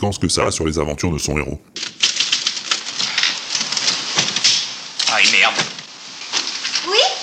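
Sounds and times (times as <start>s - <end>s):
speech: 0.0s - 2.0s
malfunctioning typewriter with faulty R key clacking: 1.8s - 5.9s.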